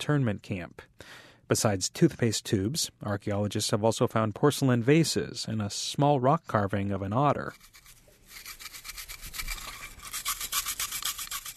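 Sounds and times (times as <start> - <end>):
speech: 0.0 - 7.9
toothbrush scrubbing dirt and rust off artifacts in a lab: 7.4 - 11.5.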